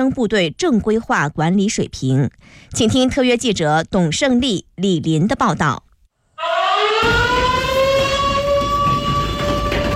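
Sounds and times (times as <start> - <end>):
speech: 0.0 - 7.4
urgent alarm siren launching an emergency combat drill in Tianjin China: 6.4 - 9.9.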